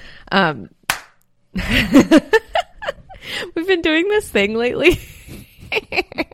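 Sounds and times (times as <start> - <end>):
speech: 0.3 - 0.8, 1.6 - 2.4, 3.3 - 5.1
high five hand slap: 0.9 - 1.2.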